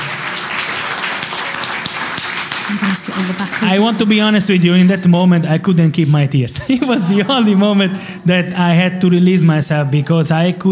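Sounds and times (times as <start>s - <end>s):
audience clapping: 0.0s - 4.8s
speech: 2.7s - 10.7s
laughter: 6.4s - 9.0s.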